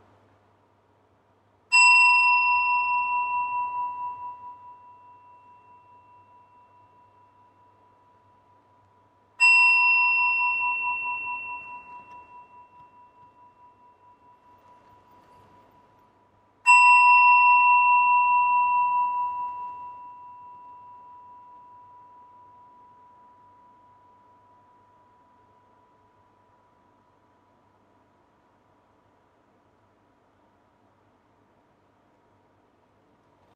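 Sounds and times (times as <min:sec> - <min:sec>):
meditation bell ringing: 0:01.7 - 0:27.7.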